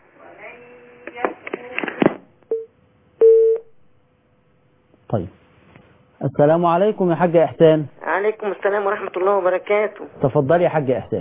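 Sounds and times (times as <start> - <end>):
telephone line tones of an incoming call on a call-in line: 2.5 - 3.6
speech: 5.1 - 5.4, 6.2 - 11.1.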